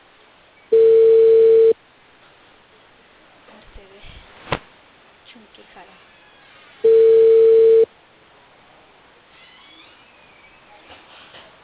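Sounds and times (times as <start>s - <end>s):
telephone ringback tone on an unanswered call: 0.7s - 1.8s, 6.8s - 7.9s.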